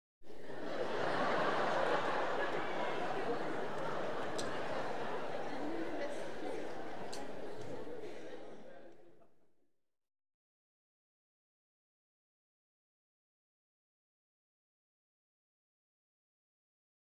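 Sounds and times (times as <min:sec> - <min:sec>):
audience laughing continuously in a theatre: 0:00.3 - 0:08.9.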